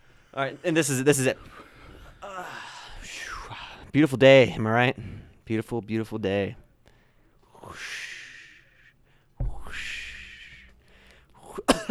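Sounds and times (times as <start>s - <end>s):
speech: 0.4s - 1.7s, 3.9s - 6.6s, 7.6s - 8.0s
raspy hoarse hacking coughing: 11.4s - 11.8s
throat clearing: 11.4s - 11.8s.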